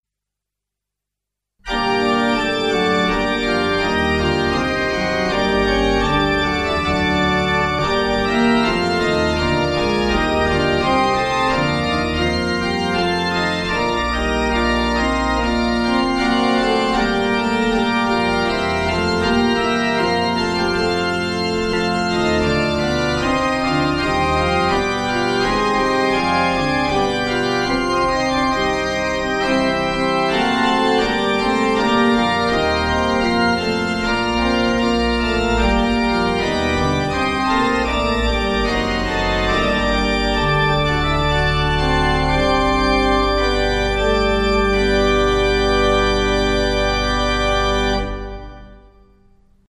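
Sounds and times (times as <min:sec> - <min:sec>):
pipe organ: 0:01.6 - 0:49.4.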